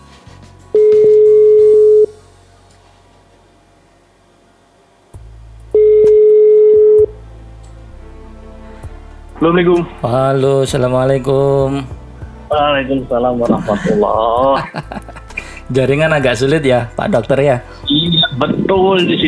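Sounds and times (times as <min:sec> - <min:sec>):
electronic ringback tones on a phone line: 0:00.8 - 0:02.2, 0:05.8 - 0:07.2
speech: 0:09.4 - 0:15.0, 0:15.7 - 0:19.2
laughter: 0:13.4 - 0:15.6.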